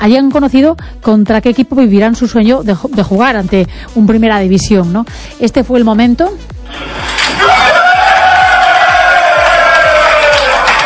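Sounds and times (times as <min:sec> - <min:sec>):
speech: 0:00.0 - 0:07.1
group of football players shouting and cheering in celebration: 0:07.1 - 0:10.8
football player whooping: 0:07.4 - 0:10.8.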